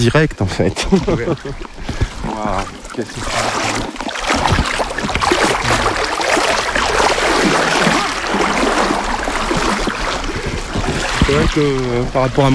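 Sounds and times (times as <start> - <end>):
speech: 0.0 - 4.8, 11.3 - 12.5
laughter: 0.5 - 2.8
flowing river water with a noticeable current: 1.2 - 12.5.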